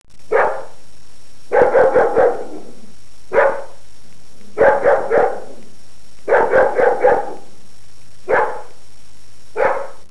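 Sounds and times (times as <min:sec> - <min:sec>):
faint steady hum: 0:00.1 - 0:10.1
domestic dog barking in single woofs and quick bursts: 0:00.3 - 0:00.8, 0:01.5 - 0:03.8, 0:04.6 - 0:05.6, 0:06.3 - 0:07.5, 0:08.3 - 0:08.8, 0:09.6 - 0:10.1.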